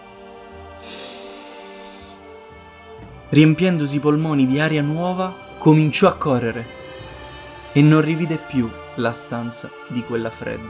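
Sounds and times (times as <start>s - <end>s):
deep inhale through the nose: 0.7s - 2.6s
speech: 3.3s - 6.8s, 7.7s - 10.6s.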